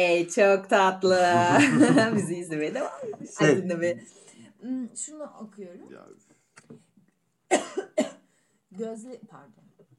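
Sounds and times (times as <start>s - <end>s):
speech: 0.0s - 6.8s, 7.5s - 9.6s
laughter: 1.3s - 3.4s
person coughing: 7.5s - 8.3s.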